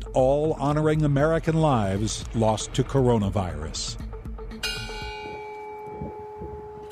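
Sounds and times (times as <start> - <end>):
speech: 0.2 - 4.1
large church bell ringing as memorial bell: 4.6 - 6.9.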